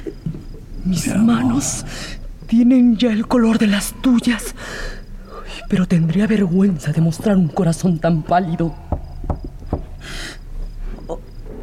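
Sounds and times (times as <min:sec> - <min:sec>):
speech: 0:00.9 - 0:05.0, 0:05.6 - 0:08.8
knocking on a door: 0:08.8 - 0:10.1.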